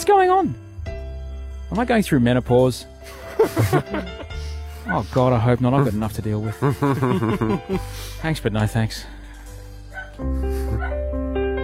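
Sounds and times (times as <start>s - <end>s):
speech: 0.0s - 0.6s, 1.7s - 4.2s, 4.8s - 9.2s, 10.2s - 10.5s
laughter: 3.1s - 4.5s, 6.5s - 8.1s
dog barking and yelping in high whining cries: 9.9s - 11.0s.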